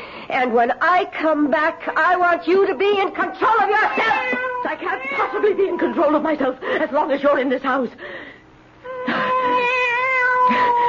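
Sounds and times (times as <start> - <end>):
speech: 0.3 - 8.3
cat meowing in a long wavering yowl: 3.8 - 5.5, 8.9 - 10.8.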